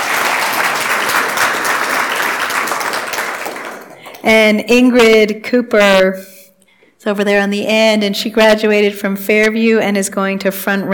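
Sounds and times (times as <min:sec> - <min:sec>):
crowd applauding: 0:00.0 - 0:04.3
speech: 0:04.2 - 0:06.4, 0:07.0 - 0:10.9.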